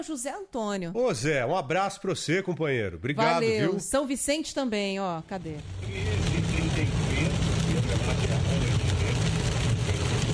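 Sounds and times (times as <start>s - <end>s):
speech: 0.0s - 7.0s
heavy rain drumming on a car heard from inside: 5.3s - 10.3s.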